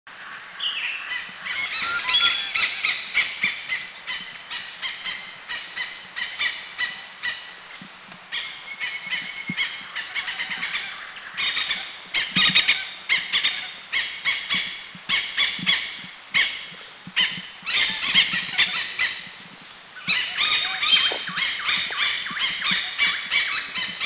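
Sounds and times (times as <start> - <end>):
Oriental Pied Hornbill in Thailand: 0.7 - 7.4, 8.3 - 19.4, 20.0 - 24.0.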